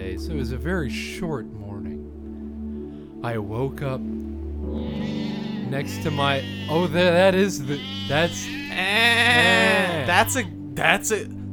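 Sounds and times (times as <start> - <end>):
speech: 0.2 - 1.9, 3.2 - 11.4
goat bleating: 4.7 - 10.5.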